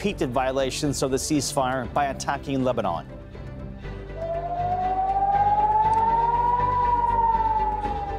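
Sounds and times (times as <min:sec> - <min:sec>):
speech: 0:00.0 - 0:03.2
air raid siren wailing: 0:04.1 - 0:08.1.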